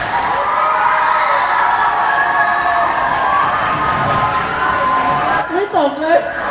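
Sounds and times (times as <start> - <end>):
crowd of children cheering and shouting: 0.0 - 6.4.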